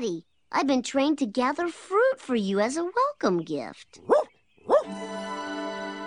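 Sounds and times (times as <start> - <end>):
speech: 0.0 - 4.2
dog barking: 4.1 - 4.9.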